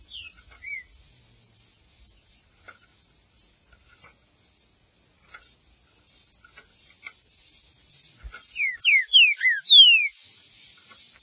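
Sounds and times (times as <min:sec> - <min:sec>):
Green-winged saltator song of strong downward-slurred whistles: 0:00.0 - 0:00.9, 0:08.5 - 0:10.2.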